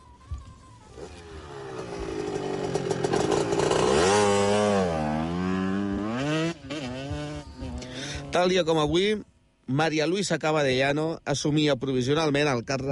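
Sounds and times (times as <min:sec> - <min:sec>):
motorcycle engine passing by: 0:00.7 - 0:08.3
speech: 0:08.4 - 0:12.9.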